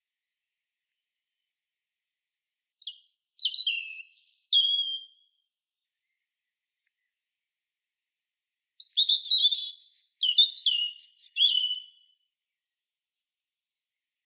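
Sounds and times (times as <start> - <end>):
European robin singing: 2.8 - 5.4, 8.8 - 12.2.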